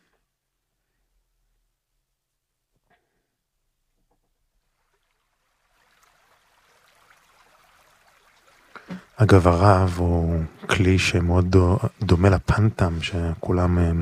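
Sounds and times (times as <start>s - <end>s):
flowing stream water: 4.6s - 13.2s
speech: 9.2s - 14.0s.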